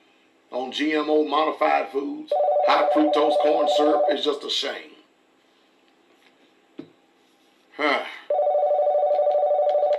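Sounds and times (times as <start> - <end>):
speech: 0.5 - 5.0
telephone ringing with a rapid electronic trill: 2.3 - 4.3, 8.3 - 9.9.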